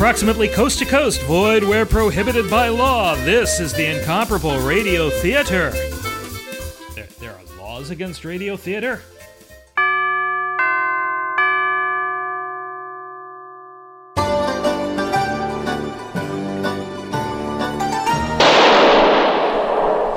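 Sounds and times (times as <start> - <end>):
speech: 0.0 - 6.0, 7.8 - 9.1
busy music: 0.0 - 10.0, 14.2 - 18.7
sustained ringing chime tones: 9.8 - 14.2
gunshot: 18.4 - 20.1.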